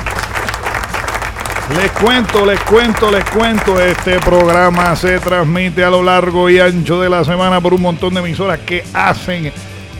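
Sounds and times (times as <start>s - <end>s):
applause in a studio: 0.0s - 5.5s
speech: 1.7s - 9.7s.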